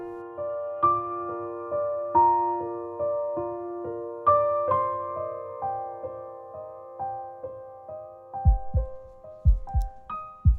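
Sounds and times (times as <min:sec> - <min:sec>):
gentle melodic music passage: 0:00.0 - 0:10.5
steady deep heartbeat thumping in paired beats: 0:08.5 - 0:10.5.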